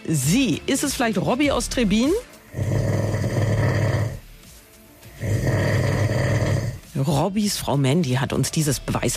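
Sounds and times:
speech: 0:00.1 - 0:02.8, 0:07.0 - 0:09.1
man snoring loudly in his sleep with a low rumbling rattle: 0:02.4 - 0:04.4, 0:05.1 - 0:06.9.

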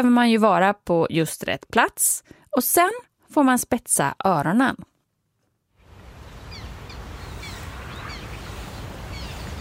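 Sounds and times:
speech: 0:00.0 - 0:04.9
low wind rumble: 0:05.8 - 0:09.5
black terns calling: 0:06.5 - 0:09.5.

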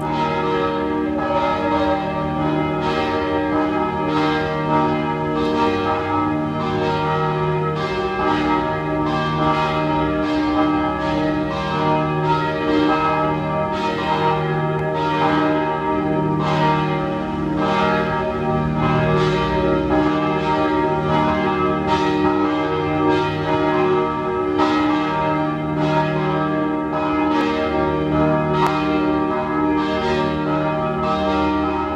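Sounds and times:
Penzing parish church bells ringing at noon in Vienna: 0:00.0 - 0:31.9.

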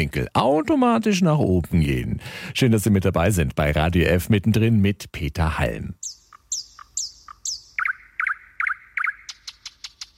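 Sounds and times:
speech: 0:00.0 - 0:06.0
birds chirping and calling: 0:05.9 - 0:10.1.

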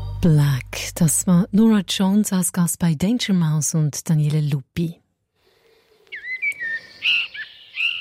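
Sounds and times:
speech: 0:00.2 - 0:05.0
blackbird singing fluting whistled phrases: 0:06.1 - 0:07.9.

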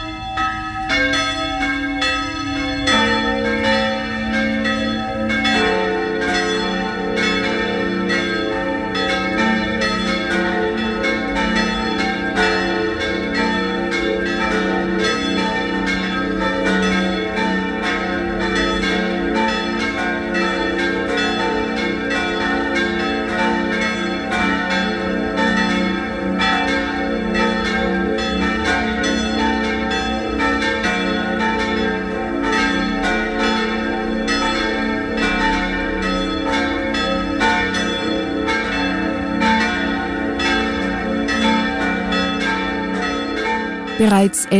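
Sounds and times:
several church bells ringing in a peal at noon: 0:00.0 - 0:44.0
speech: 0:44.1 - 0:44.5.

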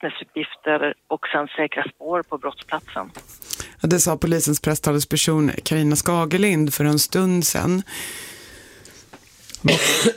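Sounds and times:
speech: 0:00.0 - 0:08.4, 0:09.6 - 0:10.1
breathing: 0:03.3 - 0:03.8, 0:07.9 - 0:09.2
harsh cough: 0:09.6 - 0:10.1.

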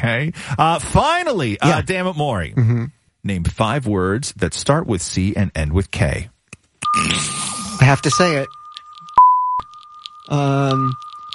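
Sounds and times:
speech: 0:00.0 - 0:08.6, 0:10.3 - 0:11.0
loud steady censor bleep over spoken words: 0:06.8 - 0:11.3.

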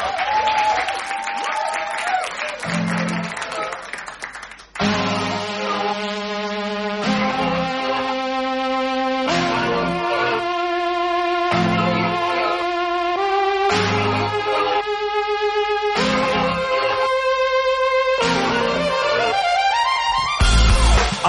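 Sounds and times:
live audience applauding a performer: 0:00.0 - 0:05.9
musical intro with bright held tones: 0:04.7 - 0:21.2.

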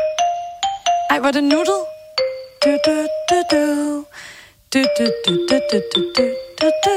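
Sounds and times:
synthetic phone ringtone playing a bouncy children's tune: 0:00.0 - 0:03.8, 0:04.8 - 0:06.9
speech: 0:01.1 - 0:01.9, 0:02.6 - 0:06.9.

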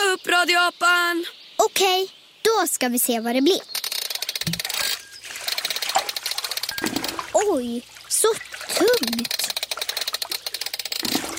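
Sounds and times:
speech: 0:00.2 - 0:03.8, 0:07.4 - 0:09.4
water sloshing in a fish pond: 0:04.2 - 0:11.3.

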